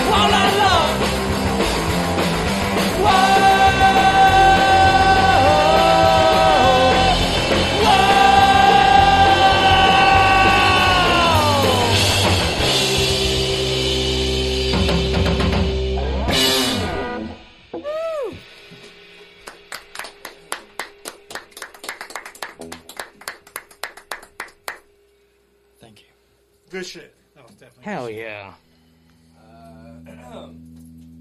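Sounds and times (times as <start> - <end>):
unreleased loud rock song with bending guitar notes: 0.0 - 18.5.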